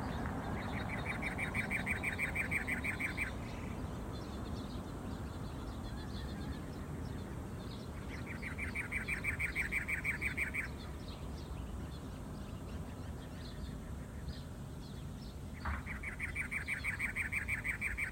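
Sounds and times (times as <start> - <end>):
steady outdoor hiss: 0.0 - 18.1
cactus wren giving harsh rasping chattering bursts: 0.6 - 3.9, 7.9 - 11.0, 15.6 - 18.1.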